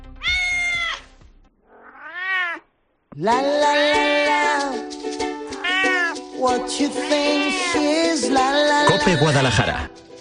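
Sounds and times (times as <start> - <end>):
stray cat meowing: 0.2 - 1.0, 1.6 - 2.7, 3.6 - 4.7, 5.6 - 6.2, 6.8 - 8.0, 8.8 - 9.4
speech: 3.2 - 4.8, 6.4 - 10.0.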